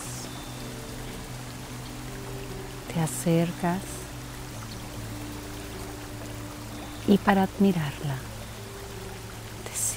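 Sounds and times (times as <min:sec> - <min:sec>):
waterfall splashing over rocks: 0:00.0 - 0:09.9
speech: 0:03.0 - 0:04.0, 0:07.1 - 0:08.3.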